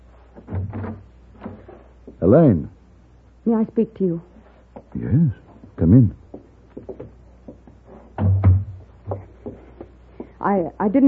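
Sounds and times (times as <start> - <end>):
wooden door opening with a creak and thump: 0.4 - 1.6
speech: 0.7 - 1.1, 2.2 - 2.7, 3.4 - 4.3, 4.9 - 6.2, 10.4 - 11.0.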